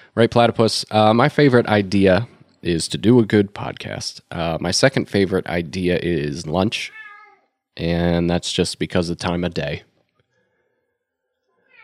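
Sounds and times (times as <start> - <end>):
speech: 0.2 - 7.0, 7.8 - 9.9
cat meowing: 6.9 - 7.5, 11.6 - 11.8.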